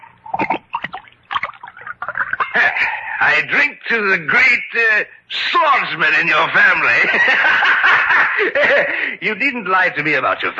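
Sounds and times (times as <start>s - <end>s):
wine glugging and splashing into a glass: 0.3s - 2.4s
laughter: 2.0s - 3.2s, 6.9s - 9.2s
speech: 2.6s - 10.5s.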